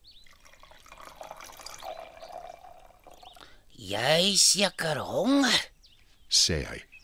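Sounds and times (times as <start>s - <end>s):
milk pouring into a bowl: 0.2s - 3.6s
speech: 3.8s - 5.7s, 6.3s - 6.9s.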